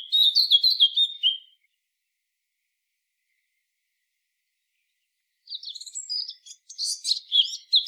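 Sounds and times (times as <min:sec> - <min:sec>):
Eurasian blackcap Sylvia atricapilla warbling song: 0:00.0 - 0:01.6, 0:05.5 - 0:07.8.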